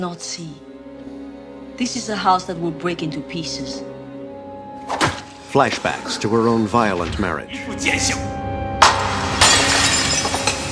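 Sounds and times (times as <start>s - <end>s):
speech: 0.0s - 0.7s, 1.8s - 3.9s, 5.0s - 8.5s
glass vase holding water and flower stalks shattering on a hard stone floor: 8.8s - 10.7s
glass shards tinkling: 9.4s - 10.7s.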